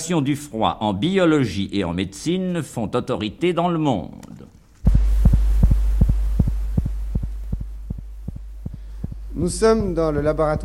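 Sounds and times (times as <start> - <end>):
speech: 0.0 - 4.3, 9.4 - 10.6
constant low hum: 4.3 - 10.6
heartbeat of a chicken embryo's heart after freezing to -196 degrees: 4.9 - 10.6.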